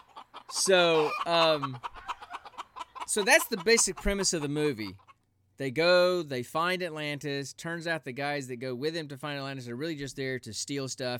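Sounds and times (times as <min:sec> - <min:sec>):
chicken clucking: 0:00.0 - 0:05.2
speech: 0:00.5 - 0:01.9, 0:03.1 - 0:05.0, 0:05.6 - 0:11.1.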